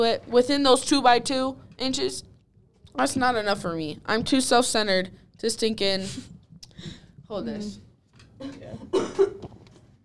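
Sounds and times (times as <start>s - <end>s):
speech: 0.0s - 2.3s, 3.0s - 9.6s
soft throaty breathing: 6.2s - 7.2s
man coughing: 8.4s - 9.5s.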